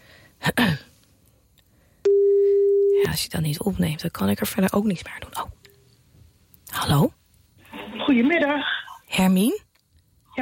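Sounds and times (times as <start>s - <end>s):
telephone ringback tone while placing a call: 2.1s - 3.0s
speech: 3.1s - 5.6s, 6.8s - 7.1s, 8.2s - 9.6s.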